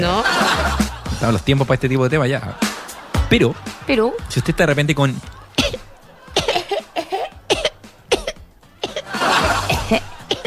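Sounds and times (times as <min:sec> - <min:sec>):
laughter: 0:00.0 - 0:10.4
speech: 0:01.2 - 0:02.7, 0:03.3 - 0:05.4
person coughing with harsh hacking: 0:05.6 - 0:09.1, 0:09.7 - 0:10.4.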